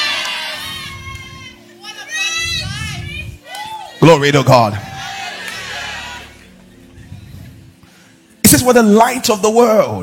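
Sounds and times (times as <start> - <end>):
church audience shrieking and cheering at preaching: 0.0 - 1.6, 3.4 - 6.5
speech: 4.0 - 4.9, 8.6 - 10.0.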